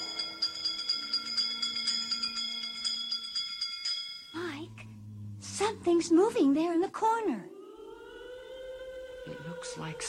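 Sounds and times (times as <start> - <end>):
bell ringing rapidly: 0.0 - 4.5
speech: 5.6 - 7.5, 9.6 - 10.0.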